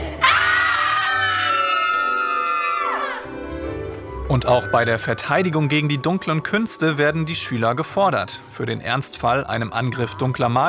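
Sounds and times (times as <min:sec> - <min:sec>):
group of people screaming together: 0:00.2 - 0:03.3
speech: 0:04.3 - 0:10.6.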